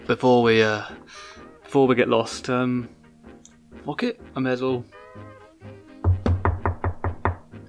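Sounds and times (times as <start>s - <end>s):
speech: 0.1s - 3.0s, 3.8s - 5.8s
solid knocks on a wooden door: 6.0s - 7.6s.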